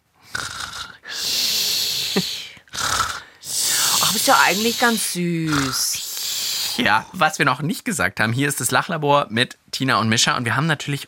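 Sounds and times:
person imitating a child's snoring: 0.2 - 7.2
speech: 4.2 - 6.0, 6.8 - 11.0.

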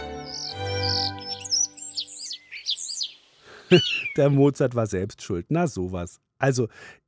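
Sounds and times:
starling on a branch chirping and warbling: 0.0 - 4.5
speech: 3.7 - 7.0.

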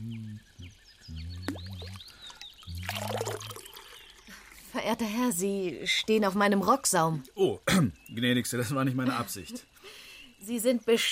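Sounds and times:
birds chirping: 0.0 - 11.0
healing spring water ladled and poured into a drinking cup at a spa park spring building: 1.6 - 4.2
speech: 4.9 - 11.0.

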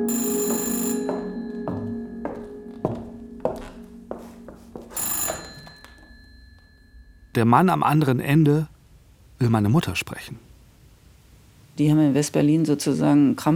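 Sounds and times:
old-fashioned telephone bell ringing: 0.1 - 3.8, 4.9 - 7.3
speech: 7.4 - 8.7, 9.4 - 10.5, 11.8 - 13.5.

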